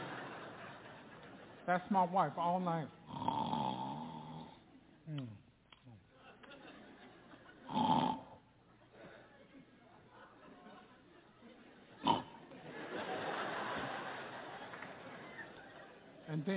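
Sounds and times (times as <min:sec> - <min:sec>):
laughter: 0:00.0 - 0:01.6, 0:05.9 - 0:07.8, 0:08.7 - 0:16.5
speech: 0:01.6 - 0:03.0, 0:05.1 - 0:06.0
person imitating loud snoring: 0:03.1 - 0:05.4, 0:07.7 - 0:08.4, 0:12.0 - 0:12.4.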